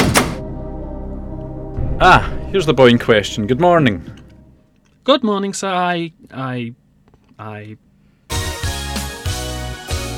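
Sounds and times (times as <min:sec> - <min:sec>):
door opening with latch releasing thunk: 0:00.0 - 0:00.4
speech: 0:02.0 - 0:04.2, 0:05.0 - 0:06.8, 0:07.4 - 0:07.9.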